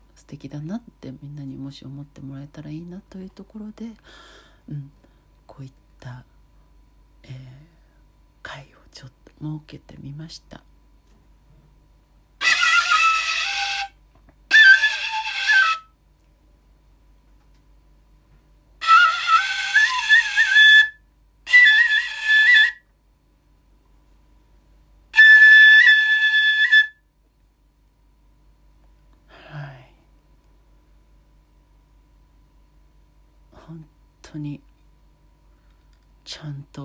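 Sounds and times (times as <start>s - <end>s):
speech: 0.3s - 5.0s, 5.6s - 6.3s, 7.2s - 7.7s, 8.4s - 10.7s
shinobue bamboo flute playing breathy high phrases: 12.4s - 16.0s, 18.8s - 22.9s, 25.1s - 27.0s.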